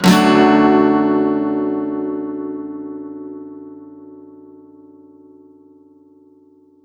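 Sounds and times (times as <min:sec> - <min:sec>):
guitar one-shots in D major at 128 BPM: 0:00.0 - 0:02.8.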